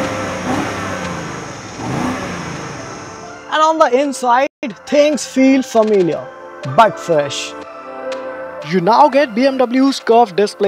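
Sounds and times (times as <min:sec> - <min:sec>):
BMW car engine revving with throaty exhaust: 0:00.0 - 0:03.4
speech: 0:03.7 - 0:07.7, 0:08.6 - 0:10.6.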